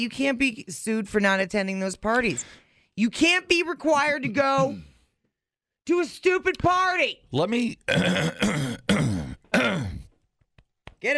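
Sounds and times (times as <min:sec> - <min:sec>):
speech: 0:00.0 - 0:04.9, 0:05.9 - 0:09.0
person clearing something stuck in the throat: 0:07.9 - 0:10.1.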